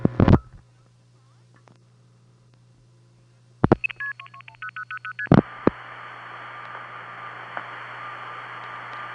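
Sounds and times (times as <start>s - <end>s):
stepped multifrequency beeps of a number five crossbar switching system: 3.7s - 5.3s
steady tone on a home phone line: 3.7s - 8.3s.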